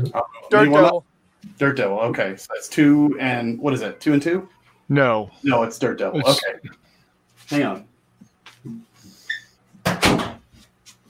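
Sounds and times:
speech: 0.0 - 6.8, 7.5 - 7.9, 8.6 - 8.9
door swinging shut with a solid thud: 9.8 - 10.5.

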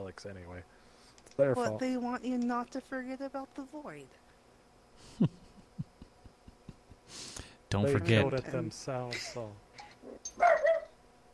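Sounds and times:
speech: 0.1 - 4.2, 5.1 - 5.4, 7.7 - 9.6
puppy whining: 10.0 - 10.9
puppy yapping barks: 10.4 - 11.0.

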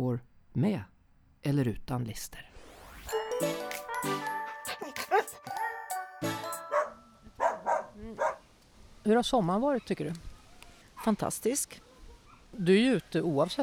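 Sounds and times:
speech: 0.0 - 2.5, 3.1 - 5.6, 9.0 - 10.3, 11.0 - 11.9, 12.5 - 13.6
several dogs barking and yelping at a dog park: 3.9 - 8.5, 11.8 - 12.6.

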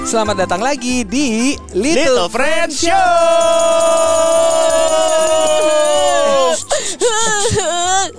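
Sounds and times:
speech: 0.1 - 8.1
woman crying: 6.6 - 8.1.

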